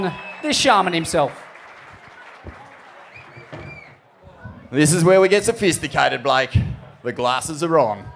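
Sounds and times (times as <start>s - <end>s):
faint whistles or cheers: 0.0s - 1.2s, 2.1s - 4.0s
speech: 0.0s - 1.4s, 4.7s - 8.1s
crowd clapping: 0.0s - 4.1s.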